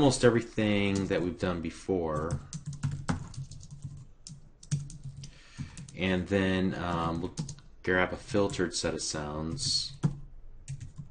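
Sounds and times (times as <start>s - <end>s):
speech: 0.0s - 2.8s, 6.0s - 10.0s
typing a string name on a computer keyboard: 2.2s - 6.0s, 7.1s - 7.6s, 9.6s - 11.0s.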